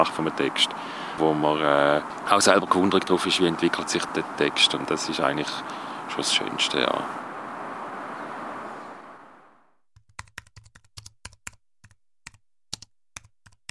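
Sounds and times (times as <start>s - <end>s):
speech: 0.0s - 7.2s
typing on a computer keyboard: 10.0s - 13.6s.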